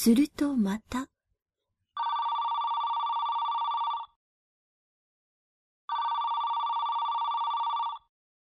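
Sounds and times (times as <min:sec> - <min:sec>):
speech: 0:00.0 - 0:01.1
mobile phone ringing: 0:02.0 - 0:04.2, 0:05.9 - 0:08.1.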